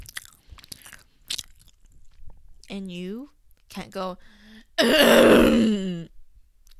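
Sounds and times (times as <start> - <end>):
mouth smacking: 0.0 - 2.4
loud wet chewing with crunchy bites: 0.0 - 2.7
speech: 2.7 - 6.2.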